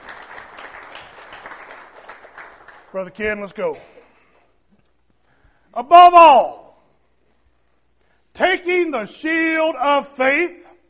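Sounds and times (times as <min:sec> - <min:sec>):
church congregation applauding: 0:00.0 - 0:03.8
speech: 0:02.9 - 0:04.0, 0:05.8 - 0:06.6, 0:08.4 - 0:10.6.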